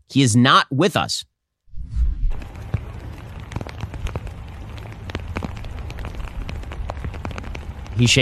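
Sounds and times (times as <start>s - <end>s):
speech: 0.1s - 1.3s, 8.0s - 8.2s
brief low rumble: 1.7s - 8.0s
steady rain pattering on a hard surface: 2.3s - 8.2s.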